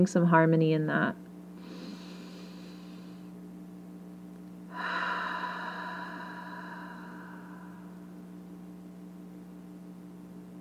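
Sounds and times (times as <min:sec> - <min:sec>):
speech: 0:00.0 - 0:01.3
constant low hum: 0:00.0 - 0:10.5
slow deliberate breathing in through the nose and out through the mouth for a relaxation exercise: 0:01.6 - 0:03.4, 0:04.7 - 0:08.4.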